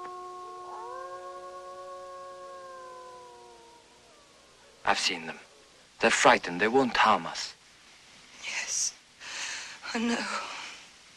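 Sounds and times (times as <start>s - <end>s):
wolf howling: 0.0s - 5.7s
speech: 4.9s - 7.6s, 9.9s - 10.5s.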